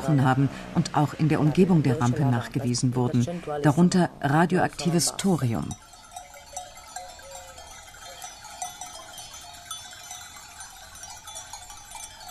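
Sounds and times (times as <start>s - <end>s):
speech: 0.0s - 5.9s
many small bells clinking on a grazing flock of sheep in Sardinia: 1.4s - 12.2s.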